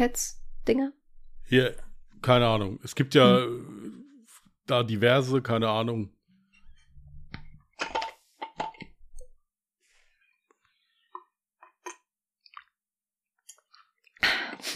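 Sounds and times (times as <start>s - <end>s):
speech: 0.0s - 4.0s, 4.7s - 6.2s
person gulping and swallowing a beverage: 3.2s - 4.4s.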